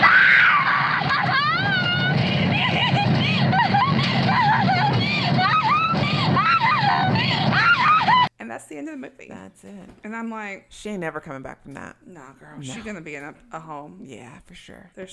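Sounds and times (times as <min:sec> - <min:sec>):
woman screaming and laughing hysterically: 0:00.0 - 0:08.3
steady rumble of a moving vehicle: 0:01.0 - 0:08.3
speech: 0:08.9 - 0:15.1.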